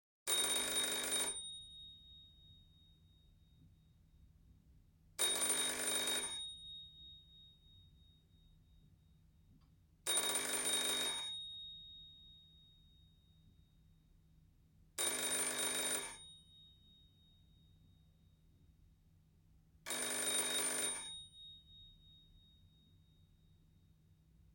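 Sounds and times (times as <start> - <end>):
household telephone ringing: 0.3 - 1.5, 5.2 - 6.5, 10.1 - 11.4, 15.0 - 16.3, 19.9 - 21.3.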